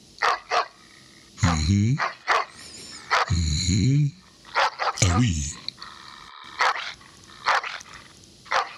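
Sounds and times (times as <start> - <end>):
faint steady hum: 0.0 - 8.7
dog barking: 0.2 - 0.8, 2.0 - 3.3, 4.5 - 5.0, 6.6 - 7.8, 8.5 - 8.7
speech: 1.7 - 2.2, 3.3 - 4.2, 5.1 - 5.6.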